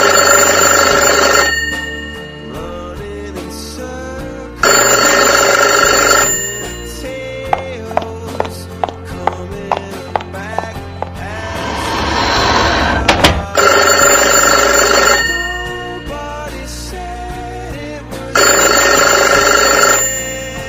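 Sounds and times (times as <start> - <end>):
telephone bell ringing: 0.0 - 3.0, 4.6 - 7.7, 13.4 - 16.7, 18.4 - 20.6
soft music with tinkling: 0.0 - 20.6.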